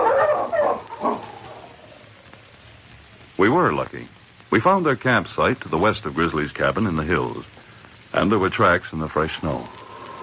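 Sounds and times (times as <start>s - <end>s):
sled dogs barking and yipping on a trail: 0.0s - 1.8s
speech: 3.4s - 7.6s, 8.2s - 9.8s.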